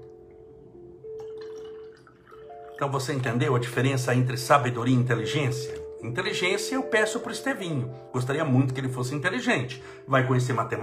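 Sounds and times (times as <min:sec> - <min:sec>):
water dripping: 0:00.0 - 0:03.6
water poured into a small mug: 0:01.1 - 0:03.6
speech: 0:02.8 - 0:10.8.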